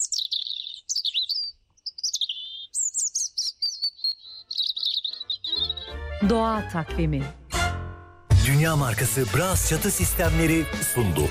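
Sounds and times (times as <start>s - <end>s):
European robin singing: 0.0s - 6.8s
speech: 6.2s - 7.4s, 8.5s - 11.2s.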